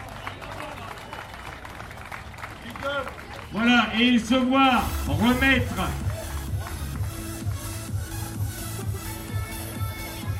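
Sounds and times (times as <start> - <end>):
audience applause: 0.0 - 4.0, 5.5 - 8.6
speech: 2.8 - 6.0.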